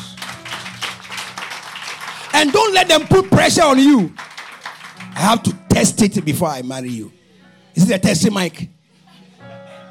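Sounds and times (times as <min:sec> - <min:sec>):
church audience clapping: 0:00.0 - 0:07.0
speech: 0:02.4 - 0:04.2, 0:05.2 - 0:07.2, 0:07.8 - 0:08.8.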